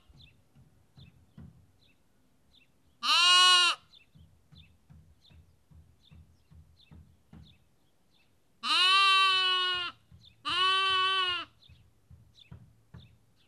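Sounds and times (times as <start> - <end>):
sheep lamb bleating in Kakopetria Cyprus: 3.0 - 3.8, 8.6 - 11.6.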